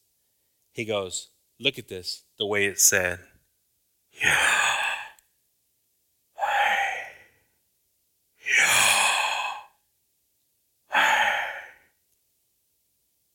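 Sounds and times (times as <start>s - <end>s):
speech: 0.8s - 3.3s, 4.2s - 4.6s
slow deep breaths: 4.2s - 5.2s, 6.4s - 7.4s, 8.4s - 9.8s, 10.9s - 12.0s.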